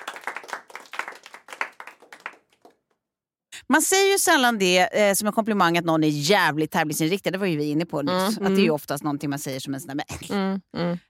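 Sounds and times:
applause sound effect: 0.0s - 3.0s
speech: 3.7s - 11.0s.

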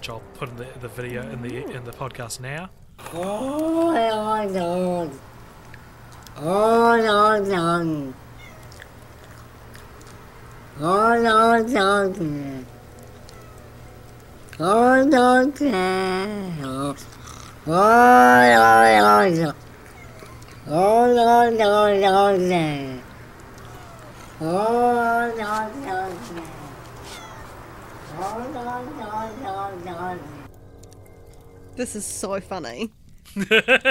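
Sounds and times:
speech: 0.0s - 5.3s, 6.4s - 8.2s, 10.8s - 12.8s, 14.6s - 19.6s, 20.7s - 23.0s, 24.4s - 26.5s, 28.2s - 30.3s, 31.8s - 33.8s
quiet hum: 0.0s - 33.8s
cat meowing and yowling: 8.3s - 8.9s, 13.2s - 14.1s, 17.7s - 21.3s, 23.6s - 30.5s.

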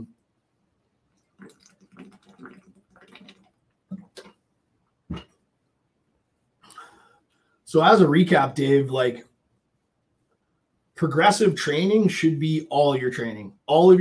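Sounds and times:
person gulping water: 1.2s - 4.5s, 5.1s - 5.4s
breathy exhale: 6.7s - 7.5s
speech: 7.7s - 9.3s, 11.0s - 13.9s.

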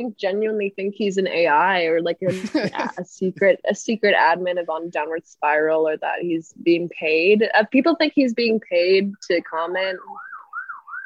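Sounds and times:
speech: 0.0s - 10.3s
laughter: 2.3s - 2.9s
timer alarm with steady electronic warble: 9.9s - 11.0s.

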